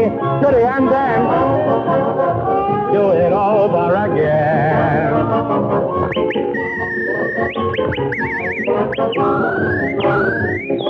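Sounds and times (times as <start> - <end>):
speech: 0.0 - 1.5
busy dense layer of sound: 0.0 - 10.8
person whistling a tune with warbling trills: 6.0 - 10.8.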